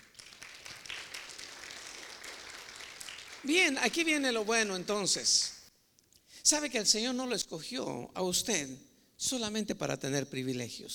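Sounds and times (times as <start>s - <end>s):
crowd of people clapping: 0.0s - 4.9s
speech: 3.4s - 5.5s, 6.5s - 10.9s.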